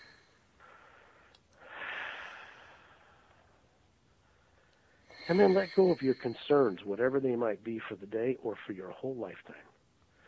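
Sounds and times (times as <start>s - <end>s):
slow deep relaxing breath: 0.0s - 3.6s, 4.2s - 6.7s
speech: 5.3s - 9.7s.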